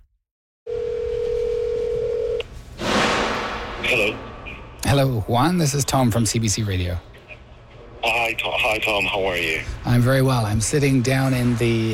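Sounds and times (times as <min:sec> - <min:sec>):
telephone dial tone: 0:00.7 - 0:02.4
speech: 0:03.9 - 0:04.3, 0:04.9 - 0:07.1, 0:08.0 - 0:11.9.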